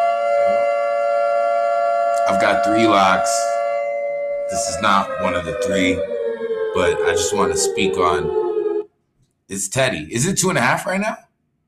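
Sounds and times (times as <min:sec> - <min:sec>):
siren sound effect: 0:00.0 - 0:08.9
speech: 0:02.3 - 0:03.6, 0:04.5 - 0:06.2, 0:06.8 - 0:08.4, 0:09.5 - 0:11.2.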